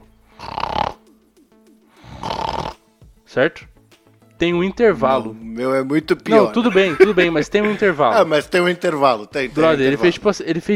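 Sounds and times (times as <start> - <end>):
person imitating snoring with their voice: 0.3 - 1.1, 2.0 - 2.8
speech: 3.3 - 3.7, 4.4 - 10.7
laughter: 6.3 - 8.6.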